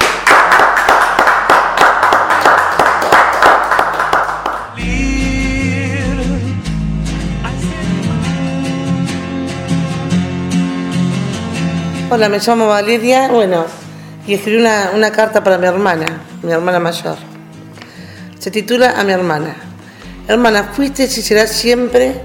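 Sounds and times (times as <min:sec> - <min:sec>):
audience applause for a woman after a reading: 0:00.0 - 0:04.8
music: 0:00.0 - 0:22.2
speech: 0:12.1 - 0:17.3, 0:18.4 - 0:19.7, 0:20.3 - 0:22.2.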